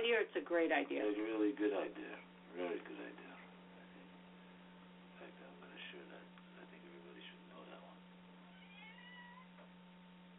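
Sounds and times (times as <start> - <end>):
speech: 0.0 - 3.4
steady low hum: 0.0 - 10.3
female cat meowing: 8.4 - 9.6.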